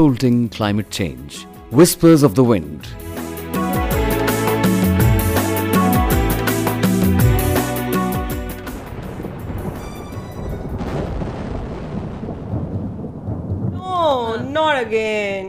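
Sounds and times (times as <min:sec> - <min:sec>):
speech: 0:00.0 - 0:03.1, 0:14.8 - 0:15.4
short musical passage: 0:03.0 - 0:10.8
heavy rain: 0:08.2 - 0:14.7
low rumbling: 0:08.5 - 0:15.4.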